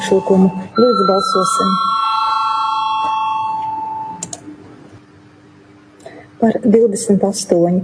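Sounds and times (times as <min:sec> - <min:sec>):
electronic voting bell tone in a parliament: 0:00.0 - 0:04.2
speech: 0:00.1 - 0:02.0, 0:06.4 - 0:07.8.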